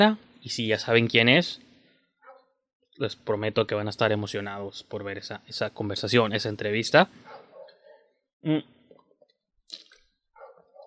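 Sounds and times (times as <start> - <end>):
speech: 0.0 - 1.6, 3.0 - 7.3, 8.4 - 8.8
person sipping water: 9.7 - 10.1
wet slurping and gulping of water: 9.7 - 10.1.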